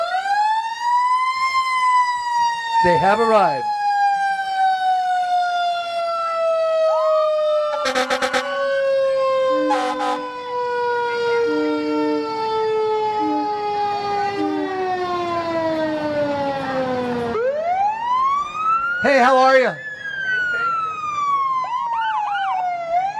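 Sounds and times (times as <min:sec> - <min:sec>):
Cal Fire engine siren wailing during a parade: 0:00.0 - 0:23.1
speech: 0:02.8 - 0:03.8
fire engine horn blasts: 0:07.7 - 0:08.6, 0:09.5 - 0:10.4, 0:13.2 - 0:13.7.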